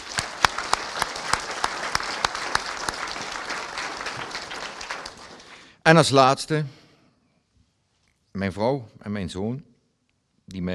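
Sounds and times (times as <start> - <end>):
audience applauding: 0.0 - 6.2
speech: 5.9 - 6.8, 8.4 - 9.7, 10.5 - 10.7.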